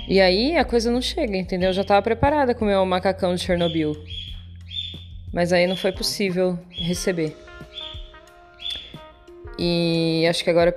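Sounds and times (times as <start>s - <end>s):
speech: 0.1s - 4.2s, 5.3s - 7.5s, 9.6s - 10.7s
faint high bird chirps: 3.6s - 6.0s, 6.7s - 8.0s, 8.6s - 9.0s.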